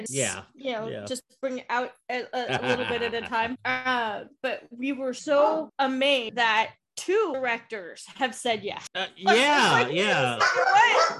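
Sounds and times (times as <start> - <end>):
speech: 0.0 - 11.1
laughter: 2.4 - 3.6
dog barking and yowling: 10.4 - 11.1.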